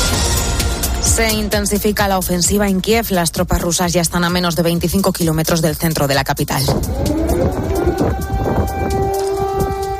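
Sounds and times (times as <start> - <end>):
rumbling noisy outdoor background: 0.0 - 9.9
speech: 1.2 - 8.5
air raid sirens wailing: 6.6 - 9.9.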